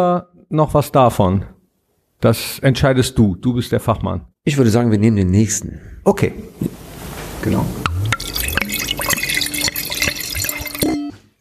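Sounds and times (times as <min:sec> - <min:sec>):
speech: 0:00.0 - 0:01.5, 0:02.2 - 0:06.8, 0:07.4 - 0:07.8
wine pouring into a glass: 0:06.4 - 0:11.2.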